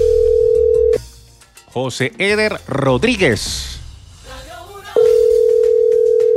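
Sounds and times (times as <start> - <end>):
telephone dial tone: 0.0 - 1.0, 5.2 - 6.3
speech: 1.8 - 3.8.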